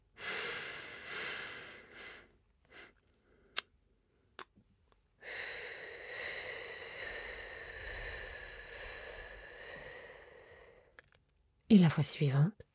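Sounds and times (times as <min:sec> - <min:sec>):
slow breathing exercise, inhaling and exhaling: 0:00.1 - 0:03.6, 0:05.2 - 0:11.1
speech: 0:11.7 - 0:12.7.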